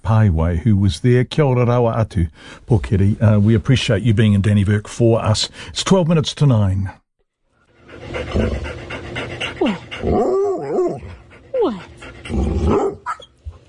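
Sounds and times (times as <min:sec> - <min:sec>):
speech: 0:00.1 - 0:07.0, 0:08.2 - 0:08.8, 0:10.0 - 0:10.3
greyhound panting heavily: 0:07.7 - 0:13.6
greyhound whining and yipping: 0:08.1 - 0:08.8, 0:09.5 - 0:13.6.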